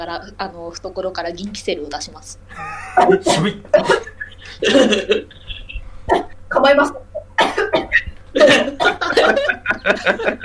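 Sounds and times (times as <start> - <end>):
speech: 0.0 - 5.4, 6.1 - 7.0, 8.4 - 10.4
laughter: 2.5 - 5.9, 7.9 - 10.4
person choking coughing fit: 2.6 - 5.2, 7.4 - 9.4.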